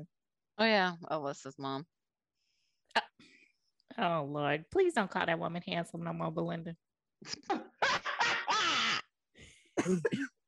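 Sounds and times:
speech: 0:00.0 - 0:02.0, 0:04.0 - 0:07.7, 0:09.8 - 0:10.4
harsh coughing and throat clearing: 0:07.3 - 0:09.1, 0:09.7 - 0:10.4.

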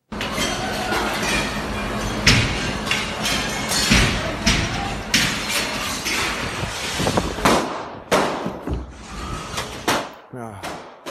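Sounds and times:
dense noisy as people try to escape: 0:00.0 - 0:10.9
gunshots in a video recording of a shooting attack: 0:07.4 - 0:08.6.

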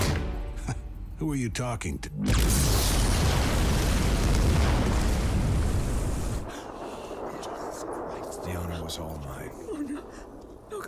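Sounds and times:
speech: 0:01.2 - 0:02.8, 0:08.9 - 0:10.8
bomb explosion blowing up a house: 0:02.2 - 0:10.8.

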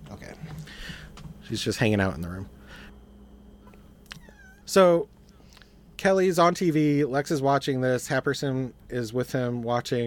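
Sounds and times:
low steady hum: 0:00.0 - 0:10.0
speech: 0:01.5 - 0:02.6, 0:04.7 - 0:05.2, 0:06.0 - 0:10.0
cat meowing: 0:04.1 - 0:04.7.

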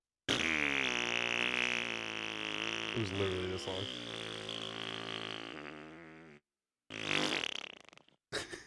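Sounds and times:
person vocally imitating a long fart: 0:00.3 - 0:08.5
speech: 0:03.0 - 0:04.2
short burst of laughter: 0:08.4 - 0:08.6.

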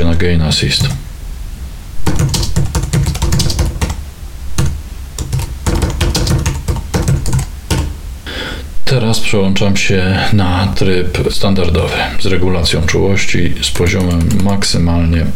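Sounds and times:
speech: 0:00.2 - 0:01.0, 0:09.0 - 0:15.3
typing on a computer keyboard: 0:02.1 - 0:04.0, 0:04.6 - 0:07.9, 0:13.8 - 0:14.6.

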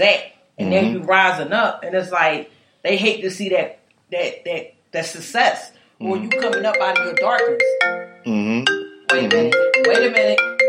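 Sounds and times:
speech: 0:00.0 - 0:10.5
incoming video call ringtone on a laptop: 0:06.3 - 0:10.6.

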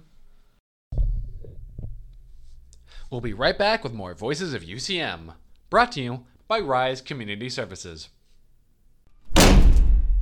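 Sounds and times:
speech: 0:03.1 - 0:08.2
door slamming shut: 0:09.3 - 0:10.2.

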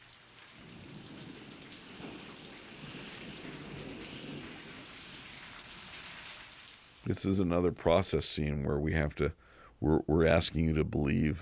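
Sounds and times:
steady rain pouring outdoors during a film shoot: 0:00.0 - 0:08.0
low rumble of thunder: 0:00.3 - 0:06.8
speech: 0:07.1 - 0:11.4.

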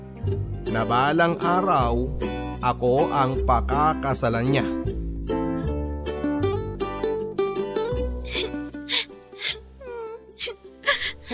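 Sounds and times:
music: 0:00.0 - 0:11.3
speech: 0:00.2 - 0:04.8
child crying and whimpering: 0:08.2 - 0:11.3.

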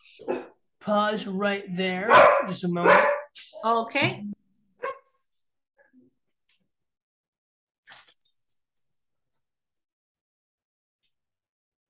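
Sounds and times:
dog barking: 0:00.2 - 0:00.6, 0:02.1 - 0:03.3, 0:04.8 - 0:05.2
speech: 0:00.2 - 0:04.4
short metallic clinks: 0:07.8 - 0:09.0.

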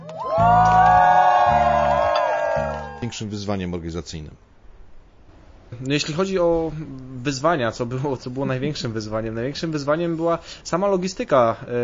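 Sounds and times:
crowd cheering with high voices whooping and shouting: 0:00.0 - 0:03.3
low steady hum: 0:00.0 - 0:11.8
speech: 0:03.1 - 0:04.5, 0:05.7 - 0:11.8.

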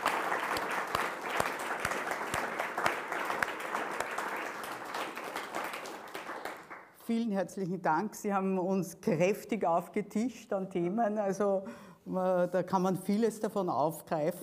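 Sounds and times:
crowd applauding after a talk: 0:00.0 - 0:07.0
speech: 0:07.1 - 0:14.4.

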